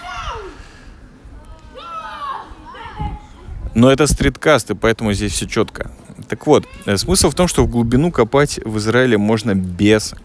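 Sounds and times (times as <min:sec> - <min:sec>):
children shouting and squealing: 0:00.0 - 0:03.6, 0:06.5 - 0:07.0
busy outdoor noise: 0:00.0 - 0:10.2
speech: 0:03.8 - 0:10.2.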